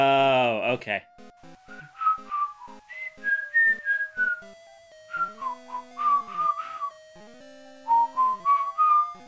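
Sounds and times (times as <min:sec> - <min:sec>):
speech: 0:00.7 - 0:01.2
person whistling a bouncy stepwise tune: 0:01.7 - 0:04.5, 0:05.1 - 0:07.0, 0:07.9 - 0:09.2.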